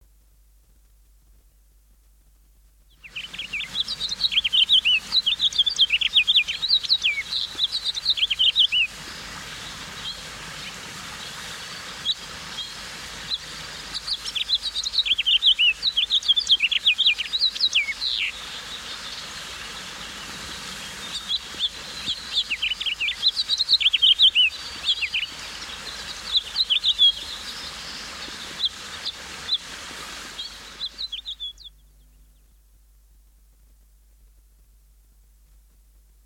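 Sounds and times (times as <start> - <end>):
songbirds singing: 2.9 - 29.7, 30.3 - 32.7
house finch singing: 3.0 - 9.0, 12.0 - 19.0, 20.7 - 29.7, 30.4 - 32.2.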